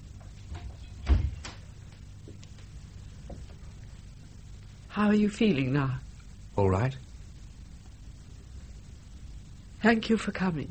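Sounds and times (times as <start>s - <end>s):
low hum: 0.0s - 10.6s
door swinging shut with a dull thump: 0.5s - 1.7s
speech: 5.0s - 6.0s, 6.6s - 7.1s, 9.8s - 10.6s.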